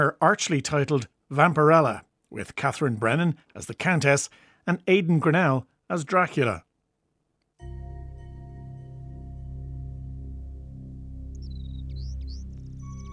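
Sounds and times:
speech: 0.0 - 6.7
loud steady organ-like drone: 7.6 - 13.1
caged pet bird chirping and whistling: 11.4 - 13.1.

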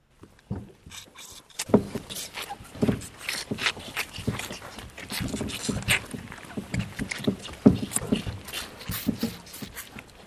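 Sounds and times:
calves suckling vigorously at a milk feeder: 0.8 - 10.2.

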